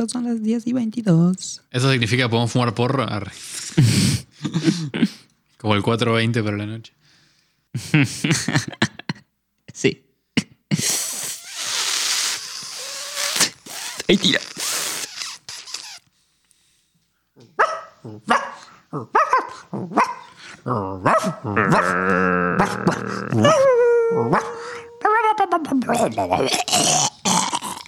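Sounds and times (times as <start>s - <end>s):
speech: 0.0s - 7.0s, 7.7s - 8.9s, 9.8s - 10.0s, 10.7s - 11.0s, 14.1s - 14.6s, 18.0s - 27.5s
laughter: 7.8s - 9.2s
dog heaving and retching: 10.8s - 16.1s, 20.6s - 24.6s, 25.9s - 27.8s.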